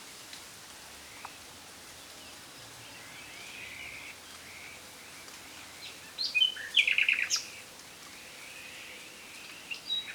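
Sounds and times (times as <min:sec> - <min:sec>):
Luscinia megarhynchos common nightingale singing: 0:05.8 - 0:07.5, 0:09.7 - 0:10.1.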